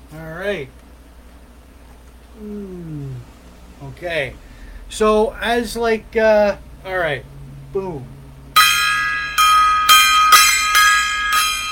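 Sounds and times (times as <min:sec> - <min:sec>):
speech: 0:00.1 - 0:00.8, 0:02.4 - 0:03.2, 0:03.8 - 0:08.2
gong struck: 0:03.5 - 0:11.7.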